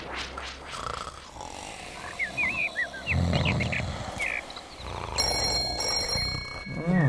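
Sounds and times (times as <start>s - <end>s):
deep rhythmic animal roars and grunts: 0.7s - 7.0s
telephone ringing with thin electronic tone: 5.2s - 7.0s.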